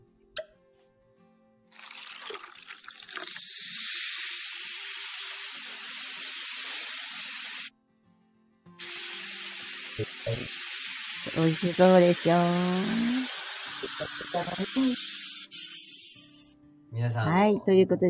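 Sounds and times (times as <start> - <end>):
red Australian sparkling Shiraz wine fizzing: 1.7 - 7.7, 8.8 - 15.8
speech: 10.0 - 10.6, 11.2 - 15.1, 17.0 - 18.0.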